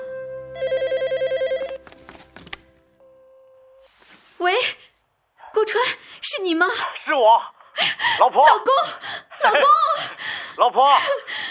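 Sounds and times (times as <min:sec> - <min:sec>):
telephone bell ringing: 0:00.6 - 0:01.8
soft rustling: 0:03.8 - 0:05.1
speech: 0:06.4 - 0:11.3.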